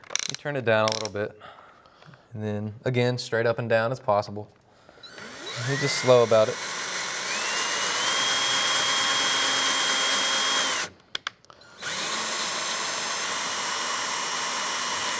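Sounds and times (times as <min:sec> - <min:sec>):
clicks: 0:00.0 - 0:01.2
speech: 0:00.3 - 0:01.6, 0:02.3 - 0:04.6, 0:05.6 - 0:06.7
power drill tapping threads into a hole at low speed: 0:04.9 - 0:15.1.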